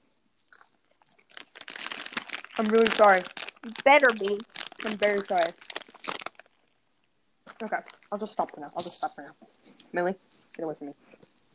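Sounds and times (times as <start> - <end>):
crunchy chewing of popcorn: 0.4 - 6.8, 7.5 - 9.4
speech: 2.6 - 5.7, 7.6 - 11.2.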